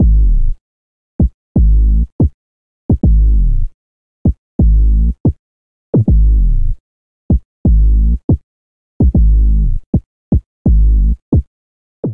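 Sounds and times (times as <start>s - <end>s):
sub bassline in A-flat minor: 0.0s - 0.5s, 1.6s - 2.1s, 3.0s - 3.7s, 4.6s - 5.2s, 6.1s - 6.8s, 7.7s - 8.2s, 9.2s - 9.8s, 10.7s - 11.2s.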